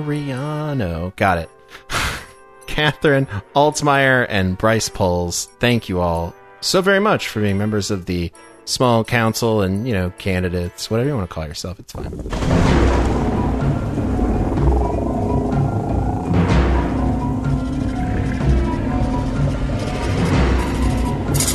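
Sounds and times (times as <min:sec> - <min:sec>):
speech: 0:00.0 - 0:02.0, 0:02.7 - 0:13.2
thunderstorm thunder rumbling: 0:12.0 - 0:21.4.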